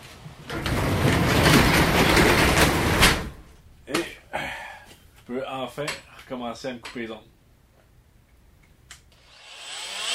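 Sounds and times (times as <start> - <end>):
garage door closing: 0.4 - 3.7
speech: 5.7 - 7.4.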